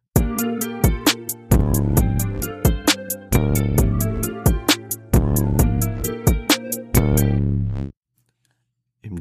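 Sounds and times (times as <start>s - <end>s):
hip-hop track with punchy drums and sustained bass: 0.2s - 7.5s.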